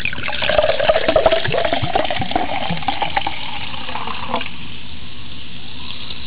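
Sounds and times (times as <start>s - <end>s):
soda pouring: 0.0s - 4.7s.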